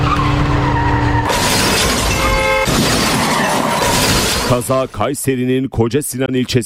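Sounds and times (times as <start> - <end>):
car skidding on a city boulevard: 0.0 - 4.6
speech: 4.5 - 6.6.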